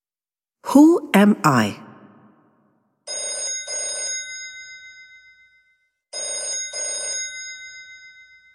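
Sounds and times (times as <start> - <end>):
speech: 0.7 - 1.8
telephone ringing with a metallic bell: 3.1 - 4.8, 6.1 - 8.4.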